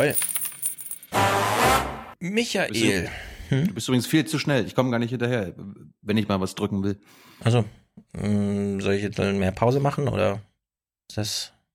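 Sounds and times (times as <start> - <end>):
speech: 0.0 - 0.3, 2.2 - 10.5, 11.1 - 11.6
coin dropping and clinking: 0.0 - 1.2.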